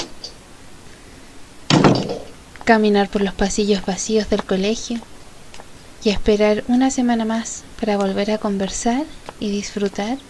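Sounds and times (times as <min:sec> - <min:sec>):
door shutting with a thud: 0:01.7 - 0:02.3
speech: 0:02.7 - 0:05.1, 0:06.0 - 0:10.2.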